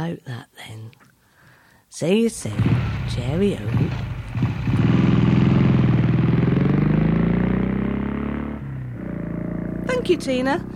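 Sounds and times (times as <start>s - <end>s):
speech: 0.0s - 1.1s, 1.9s - 4.5s, 10.0s - 10.7s
motorbike engine starting and roaring: 2.5s - 10.7s.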